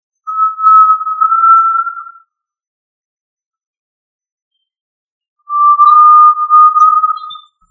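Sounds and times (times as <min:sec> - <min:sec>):
tinamou giving long pure rising whistles: 0:00.3 - 0:02.2, 0:05.5 - 0:07.6.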